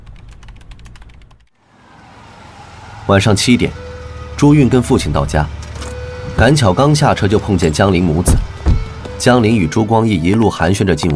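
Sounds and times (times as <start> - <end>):
rapid typing on a computer keyboard: 0.0 - 1.5
speech: 3.1 - 3.8, 4.4 - 5.6, 6.4 - 8.4, 9.2 - 11.1.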